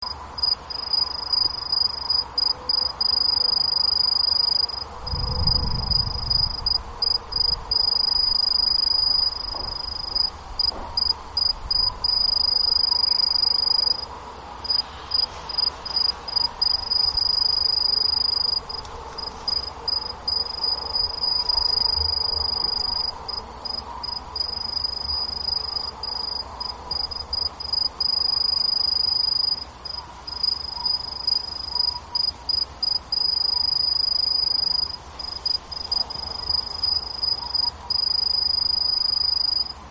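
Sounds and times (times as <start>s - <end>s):
kinhibari cricket chirping: 0.0s - 39.8s.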